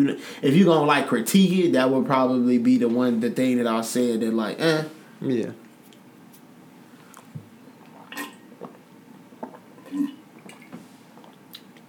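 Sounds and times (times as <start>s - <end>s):
speech: 0.0s - 5.6s
person drinking water from a jug: 7.1s - 11.8s.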